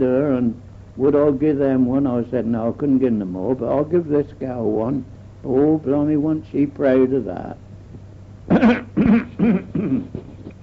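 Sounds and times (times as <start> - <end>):
speech: 0.0 - 7.6, 8.5 - 10.2
harsh chesty coughs: 8.5 - 10.3.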